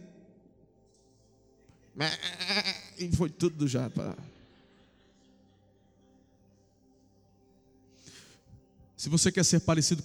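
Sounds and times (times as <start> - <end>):
speech: 2.0 - 2.3, 3.0 - 4.3, 9.1 - 10.0
sheep bleating: 2.0 - 3.0.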